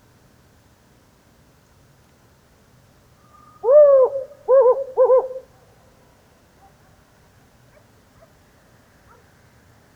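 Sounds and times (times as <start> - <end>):
male Hume's owl low smooth hoot during a lunar eclipse: 3.3 - 5.6.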